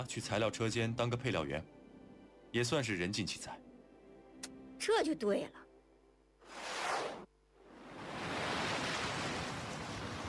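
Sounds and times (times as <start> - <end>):
speech: 0.0 - 1.8, 2.5 - 3.7, 4.8 - 5.6
ocean waves surging at the seashore beside a stone forest of rock pillars: 7.8 - 10.2.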